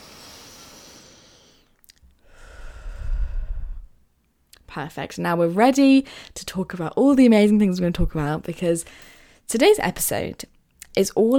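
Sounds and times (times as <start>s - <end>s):
deep breath in and out during a guided relaxation: 0.0s - 4.0s
speech: 4.7s - 11.3s.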